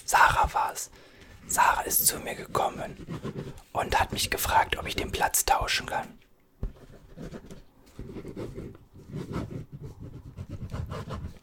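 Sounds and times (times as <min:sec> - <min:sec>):
speech: 0:00.7 - 0:06.2
pen scratching across paper: 0:01.7 - 0:05.0, 0:06.6 - 0:11.4.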